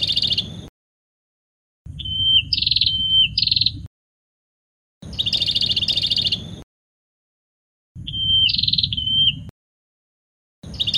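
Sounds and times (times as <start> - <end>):
prinia singing a thin whistle and buzzy pulsed trills: 0.0 - 0.7, 1.9 - 3.9, 5.0 - 6.6, 8.0 - 9.5, 10.6 - 10.9.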